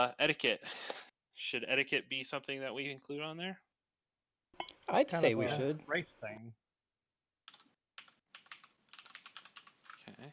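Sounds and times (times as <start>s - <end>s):
speech: 0.0s - 3.7s, 4.6s - 6.6s, 10.2s - 10.3s
rapid typing on a computer keyboard: 7.5s - 10.3s.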